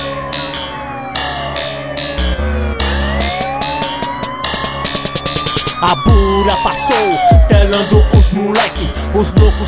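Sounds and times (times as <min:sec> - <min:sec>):
police siren wailing: 0:00.0 - 0:08.6
steady thumping beat: 0:03.0 - 0:08.7, 0:09.3 - 0:09.6
speech: 0:05.8 - 0:09.6.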